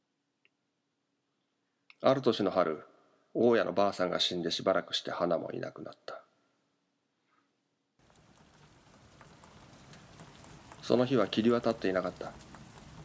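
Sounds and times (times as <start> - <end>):
speech: 2.0 - 6.2, 10.9 - 12.5
rainy season rain falling: 8.0 - 13.0.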